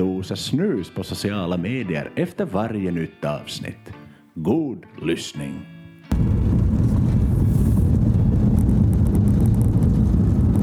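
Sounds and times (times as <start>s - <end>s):
speech: 0.2s - 6.3s
car rolling over cobblestones recorded from inside the vehicle: 6.1s - 10.6s.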